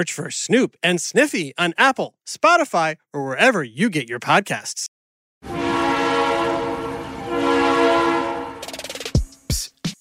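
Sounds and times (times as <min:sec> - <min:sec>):
speech: 0:00.0 - 0:05.6
train horn blaring: 0:05.4 - 0:08.8
rhythmic mechanical clacks: 0:08.6 - 0:09.7.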